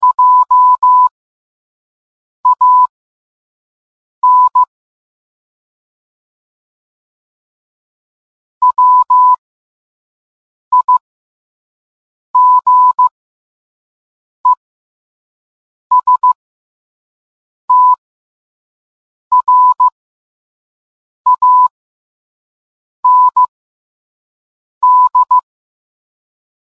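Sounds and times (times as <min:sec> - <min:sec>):
morse code beeps: 0:00.0 - 0:01.1, 0:02.4 - 0:02.9, 0:04.2 - 0:04.7, 0:08.6 - 0:09.4, 0:10.7 - 0:11.0, 0:12.4 - 0:13.1, 0:15.9 - 0:16.4, 0:17.7 - 0:18.0, 0:19.3 - 0:20.0, 0:21.3 - 0:21.7, 0:23.0 - 0:23.5, 0:24.8 - 0:25.4.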